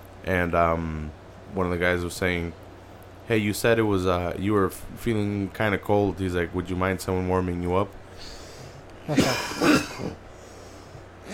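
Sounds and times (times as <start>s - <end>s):
speech: 0.2s - 2.6s, 3.3s - 8.4s, 9.0s - 10.2s
person fake coughing imitating a man at a press conference: 9.1s - 10.2s.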